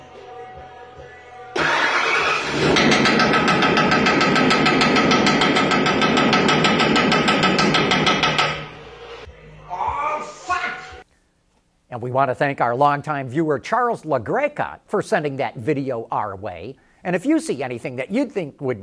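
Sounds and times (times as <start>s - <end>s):
harsh metallic knocking and clatter from truck engine: 1.6s - 9.3s
truck engine under repair roaring: 1.6s - 9.4s
speech: 12.0s - 18.8s.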